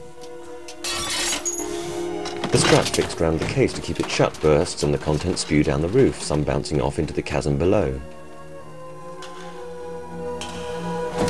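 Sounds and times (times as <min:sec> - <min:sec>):
tinkling glass shards: 0:00.8 - 0:06.5
skylight glass shattering: 0:00.8 - 0:08.2
speech: 0:02.5 - 0:08.2.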